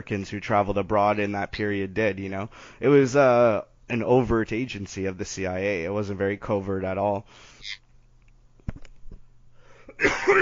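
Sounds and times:
speech: 0.0s - 7.8s, 10.0s - 10.3s
person coughing: 9.9s - 10.3s.

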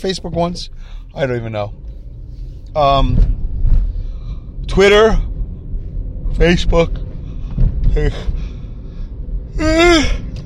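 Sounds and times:
speech: 0.0s - 1.9s, 2.8s - 3.3s, 4.7s - 5.3s, 6.3s - 7.0s, 7.9s - 8.4s, 9.6s - 10.2s
person yawning with a falling pitch: 9.6s - 10.3s.

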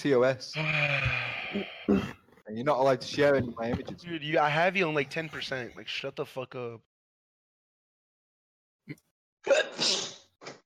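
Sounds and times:
speech: 0.0s - 6.9s, 8.9s - 10.1s
person sneezing: 9.5s - 10.3s.

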